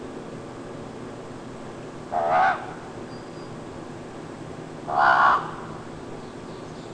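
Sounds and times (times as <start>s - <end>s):
common raven giving hoarse croaks: 2.1s - 2.9s, 4.9s - 5.8s.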